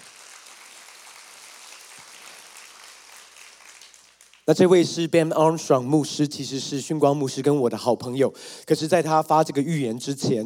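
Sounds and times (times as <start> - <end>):
church audience clapping: 0.0 - 4.8
speech: 4.5 - 10.4.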